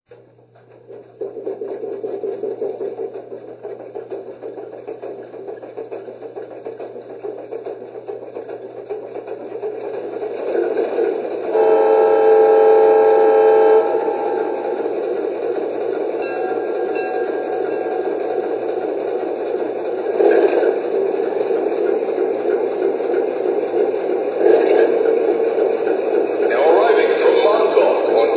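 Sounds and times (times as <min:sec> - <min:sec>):
Alco FA2 diesel locomotive: 0:00.1 - 0:28.3.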